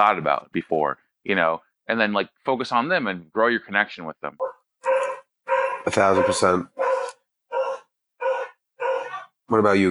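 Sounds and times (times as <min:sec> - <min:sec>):
speech: 0:00.0 - 0:04.6, 0:05.8 - 0:07.2, 0:09.5 - 0:09.8
dog barking: 0:04.4 - 0:09.3.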